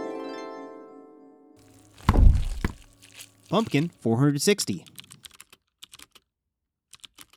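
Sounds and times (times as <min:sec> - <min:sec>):
speech: 0:03.5 - 0:05.0
typing on a computer keyboard: 0:04.9 - 0:06.3, 0:06.9 - 0:07.3.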